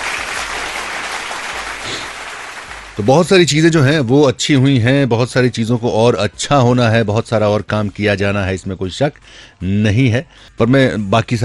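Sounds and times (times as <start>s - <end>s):
audience applause at a speech: 0.0s - 3.1s
speech: 3.0s - 11.4s.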